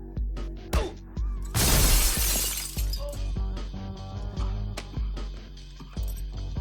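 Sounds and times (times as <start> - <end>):
steady music: 0.0 - 6.6
body crashing through a glass table: 1.5 - 3.2.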